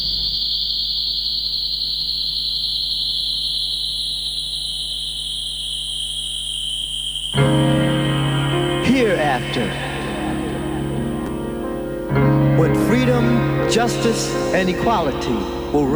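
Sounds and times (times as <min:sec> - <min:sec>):
crickets chirping: 0:00.0 - 0:15.9
fuller lower tonal sound: 0:07.4 - 0:15.9
speech: 0:09.4 - 0:09.9, 0:12.6 - 0:15.9.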